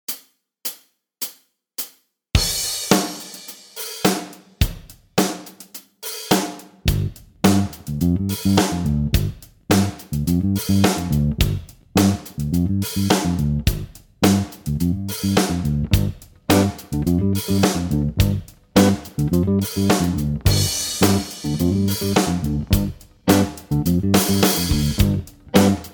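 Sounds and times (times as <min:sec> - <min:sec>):
slide jam backing track: 0:06.2 - 0:25.9.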